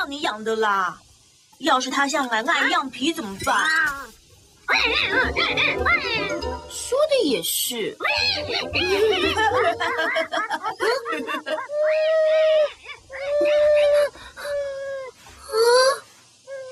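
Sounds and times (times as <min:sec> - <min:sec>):
speech: 0:00.0 - 0:12.8
laughter: 0:08.4 - 0:11.9
dog howling and whimpering: 0:10.8 - 0:15.2.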